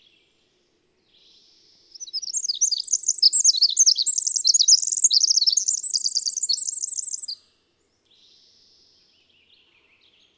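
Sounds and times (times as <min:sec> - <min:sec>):
twittering bird song with short trills: 0:01.9 - 0:07.4.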